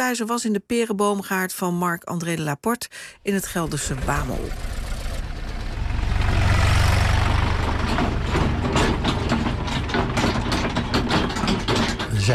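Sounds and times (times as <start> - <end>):
speech: 0.0 - 4.8
tractor engine hauling crates of pears through a pear orchard: 3.0 - 12.3
clattering: 3.3 - 12.3.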